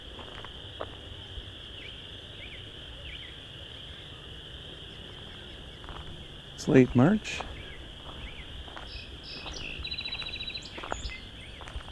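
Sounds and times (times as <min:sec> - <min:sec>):
constant high chorus of frogs or insects: 0:00.0 - 0:11.9
song sparrow singing: 0:04.8 - 0:11.8
speech: 0:06.6 - 0:07.5.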